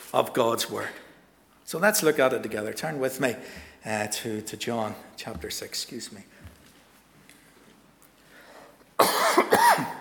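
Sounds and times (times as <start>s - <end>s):
speech: 0.1s - 1.0s, 1.7s - 6.4s
harsh raspy coughing: 9.0s - 9.9s.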